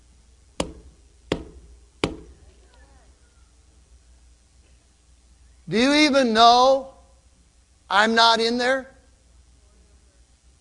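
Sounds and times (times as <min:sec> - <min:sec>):
firm knocking on a door: 0:00.6 - 0:02.3
speech: 0:05.7 - 0:06.9, 0:07.9 - 0:08.9.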